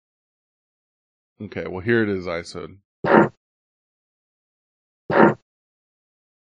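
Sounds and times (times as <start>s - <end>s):
speech: 1.4s - 3.4s
short raspy fart sounds: 3.1s - 3.4s, 5.1s - 5.4s.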